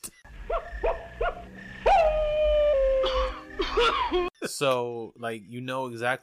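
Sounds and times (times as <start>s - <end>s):
cartoon wolf howling at the moon: 0.6s - 3.4s
cartoon wolf coughing from an asthma attack: 3.0s - 4.3s
speech: 4.1s - 6.2s.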